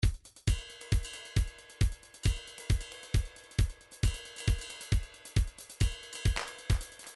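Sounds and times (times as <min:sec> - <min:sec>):
trance MIDI beat loops: 0:00.0 - 0:07.1
flam cymbal: 0:00.3 - 0:07.1.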